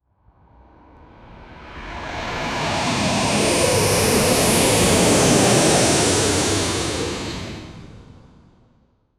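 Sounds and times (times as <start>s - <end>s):
jet air crash passing by: 2.1s - 8.2s.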